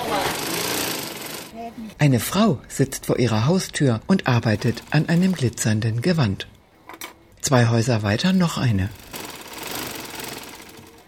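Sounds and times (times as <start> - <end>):
sewing machine running: 0.0 - 1.6, 3.3 - 6.5, 8.1 - 11.0
speech: 1.7 - 6.6, 7.4 - 9.0.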